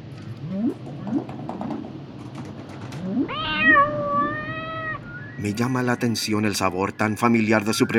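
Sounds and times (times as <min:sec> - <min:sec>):
cat meowing: 0:03.1 - 0:05.0
speech: 0:05.4 - 0:07.9.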